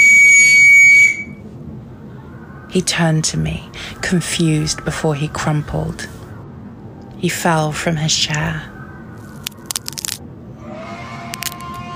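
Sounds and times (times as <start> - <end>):
shrill whistle blast: 0.0 - 1.4
faint low rumble: 1.1 - 11.9
speech: 2.8 - 6.2, 7.2 - 8.7.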